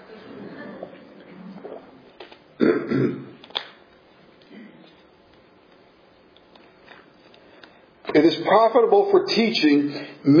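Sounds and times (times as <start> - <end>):
speech: 2.6 - 3.3, 8.2 - 10.3
person clearing throat because of a tickle: 2.6 - 3.4, 4.5 - 5.0.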